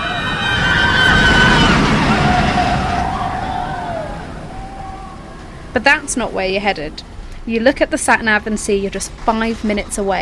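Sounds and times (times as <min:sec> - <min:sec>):
high wavering screams of children and adults at a fairground: 0:00.0 - 0:06.0
car driving along a highway past a fairground: 0:00.0 - 0:06.4
speech: 0:05.8 - 0:10.1.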